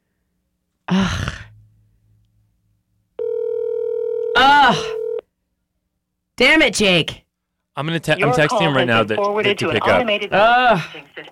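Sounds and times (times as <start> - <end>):
phone ringback tone of an unanswered call: 3.2 - 5.2
speech: 6.4 - 7.2, 7.8 - 11.3.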